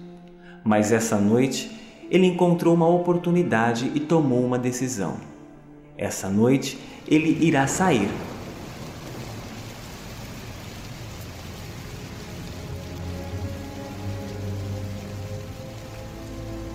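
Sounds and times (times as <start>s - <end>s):
speech: 0.6s - 5.3s, 6.0s - 8.3s
steady rain: 6.7s - 16.7s
distant thunder rumble: 7.0s - 16.7s.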